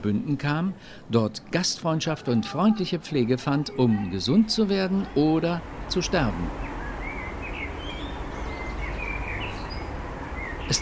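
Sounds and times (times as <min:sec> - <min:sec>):
steady rushing hiss: 0:00.0 - 0:02.2, 0:02.8 - 0:10.7
speech: 0:00.0 - 0:06.7
blackbirds singing fluted whistling phrases in a valley: 0:03.2 - 0:10.7.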